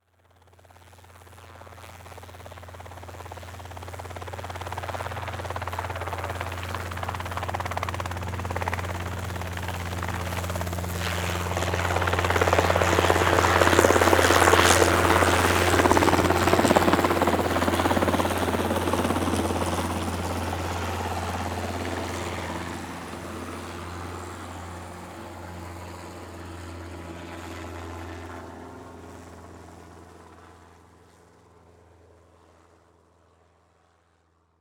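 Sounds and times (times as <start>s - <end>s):
transportation helicopter flying by overhead slowly: 0.2s - 34.2s.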